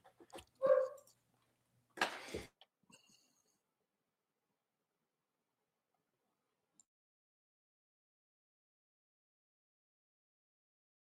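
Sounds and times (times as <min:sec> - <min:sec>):
dogs barking: 0:00.6 - 0:01.1.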